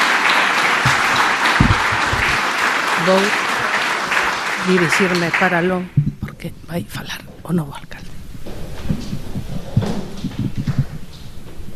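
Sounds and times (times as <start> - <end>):
applause from council members and audience: 0.0 - 6.4
low thuds: 0.9 - 2.4, 5.9 - 6.7, 8.1 - 11.7
speech: 3.0 - 3.4, 4.6 - 8.0.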